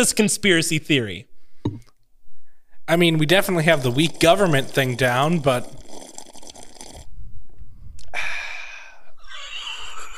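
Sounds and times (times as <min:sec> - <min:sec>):
speech: 0:00.0 - 0:01.9, 0:02.9 - 0:05.8
long slurping sip of a drink: 0:03.4 - 0:07.3.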